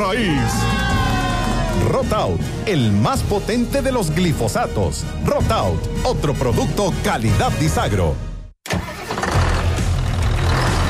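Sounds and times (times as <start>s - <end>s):
speech: 0.0s - 0.8s, 1.8s - 8.8s
New Holland tractor engine starting: 8.6s - 10.8s.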